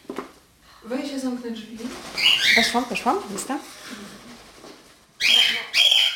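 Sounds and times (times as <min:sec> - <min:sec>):
speech: 0:00.9 - 0:04.1
cockatiels chirping in a bird room: 0:02.2 - 0:03.0, 0:05.2 - 0:06.1.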